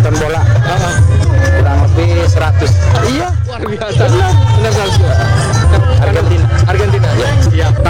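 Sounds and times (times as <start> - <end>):
dense outdoor crowd of residents chattering at a community football event: 0.0 - 7.8
laughter: 0.0 - 7.8
low rumbling hum: 0.0 - 7.8.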